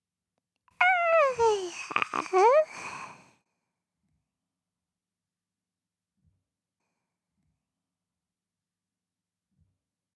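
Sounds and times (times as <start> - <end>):
newborn baby crying at birth: 0.8 - 3.1.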